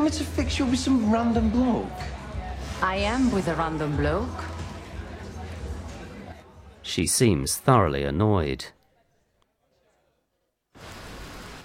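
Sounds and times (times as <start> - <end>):
speech: 0.1 - 2.2, 2.8 - 4.5, 6.9 - 8.8
heavy rain pouring: 10.8 - 11.6.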